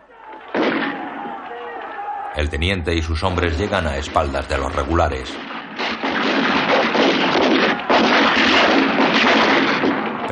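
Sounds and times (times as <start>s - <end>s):
riflemen firing a volley of rifle shots in a battle: 0.2s - 2.0s, 5.2s - 10.2s
speech: 2.4s - 5.5s.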